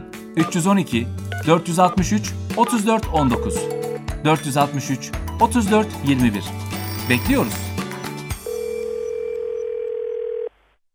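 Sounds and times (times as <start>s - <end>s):
speech: 0.4s - 7.7s
steady telephone ringing tone: 3.4s - 4.0s, 6.7s - 10.6s.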